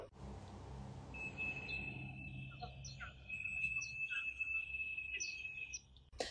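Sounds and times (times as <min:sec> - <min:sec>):
low rumble of the city in Beijing: 0:00.0 - 0:06.2
scattered bird chirps: 0:01.1 - 0:06.1
pigeon whistles humming as pigeons fly overhead in Beijing: 0:01.2 - 0:05.8.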